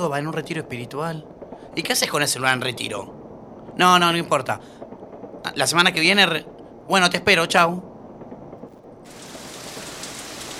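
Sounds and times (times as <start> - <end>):
speech: 0.0 - 3.2, 3.8 - 4.8, 5.4 - 7.9
heavy afternoon rain pouring: 9.1 - 10.5.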